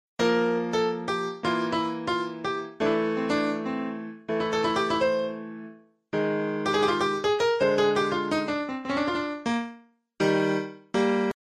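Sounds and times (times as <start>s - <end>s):
piano: 0.2s - 11.4s.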